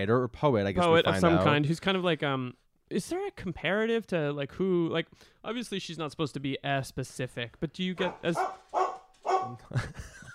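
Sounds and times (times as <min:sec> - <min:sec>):
speech: 0:00.0 - 0:08.8, 0:09.5 - 0:10.3
dog barking: 0:08.0 - 0:09.7
laughter: 0:09.6 - 0:10.3.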